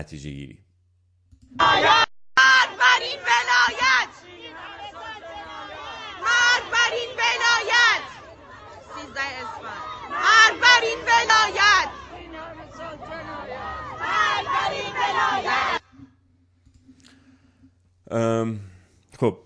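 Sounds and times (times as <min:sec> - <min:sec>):
protesting crowd in Tehran shouting at officials in front of an education department office: 0:01.6 - 0:15.8.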